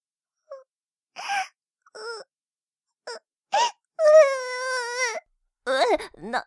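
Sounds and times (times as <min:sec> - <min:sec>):
small child crying: 0:04.0 - 0:06.4.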